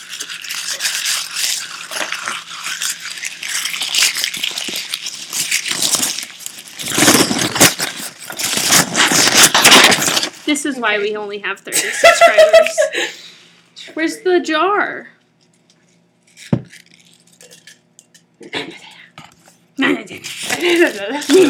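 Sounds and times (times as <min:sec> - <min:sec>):
paper trash being crumpled and handled: 0:00.0 - 0:10.6, 0:20.2 - 0:21.4
speech: 0:10.6 - 0:13.3, 0:13.9 - 0:15.2, 0:20.9 - 0:21.4.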